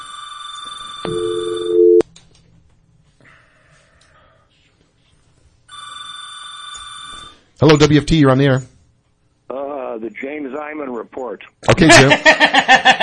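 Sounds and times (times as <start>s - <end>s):
telephone ringing for an incoming call on a call-in line: 0.0s - 2.0s, 5.7s - 7.5s
speech: 7.6s - 8.7s, 10.1s - 13.0s
laughter: 11.8s - 13.0s.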